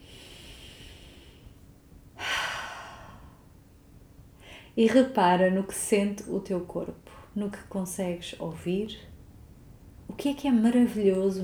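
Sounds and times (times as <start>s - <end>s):
slow deep inhale and exhale: 0.0s - 3.5s, 4.4s - 4.8s
speech: 4.8s - 9.1s, 10.2s - 11.4s.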